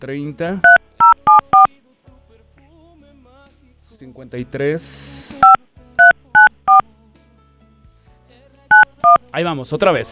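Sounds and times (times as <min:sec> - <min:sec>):
speech: 0:00.0 - 0:00.8, 0:04.0 - 0:05.6, 0:09.3 - 0:10.1
touch-tone beeps of a telephone number being dialed: 0:00.6 - 0:01.7, 0:05.4 - 0:06.8, 0:08.7 - 0:09.2.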